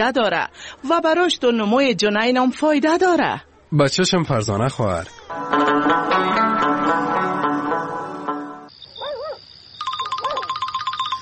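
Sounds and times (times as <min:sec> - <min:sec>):
speech: 0:00.0 - 0:06.1
music: 0:05.3 - 0:08.7
telephone ringing with a high electronic tone: 0:09.8 - 0:11.1.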